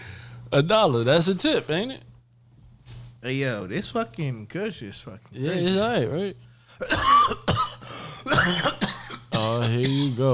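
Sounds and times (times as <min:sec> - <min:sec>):
speech: 0:00.5 - 0:02.1, 0:03.2 - 0:07.7, 0:08.4 - 0:08.8, 0:09.5 - 0:10.3
harsh coughing turned away from the microphone: 0:06.8 - 0:10.2.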